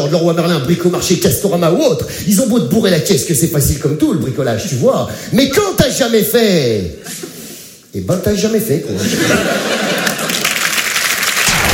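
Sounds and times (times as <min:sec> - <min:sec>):
speech: 0:00.1 - 0:07.3, 0:07.9 - 0:09.9
laughter: 0:09.0 - 0:10.7
audience applause: 0:09.8 - 0:11.7.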